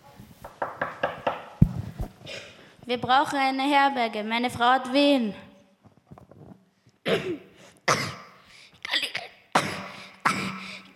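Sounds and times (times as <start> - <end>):
speech: 2.3 - 5.4
harsh raspy coughing fit: 7.0 - 8.4, 9.5 - 10.9.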